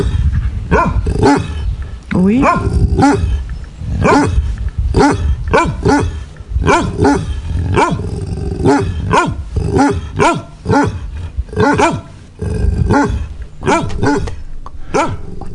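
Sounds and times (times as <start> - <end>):
several dogs barking: 0.0 - 1.7, 2.4 - 12.2, 12.8 - 15.3
speech: 2.2 - 3.4.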